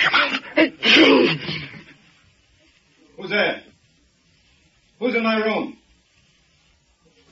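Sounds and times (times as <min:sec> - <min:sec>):
stifled sneeze: 0:00.2 - 0:01.9
speech: 0:05.2 - 0:05.7.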